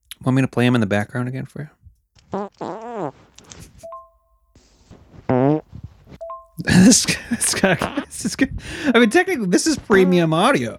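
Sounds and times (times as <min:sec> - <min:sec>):
speech: 0:00.2 - 0:01.8, 0:06.8 - 0:10.7
NFT fart recordings: 0:02.2 - 0:03.6, 0:05.0 - 0:05.9, 0:07.6 - 0:08.1.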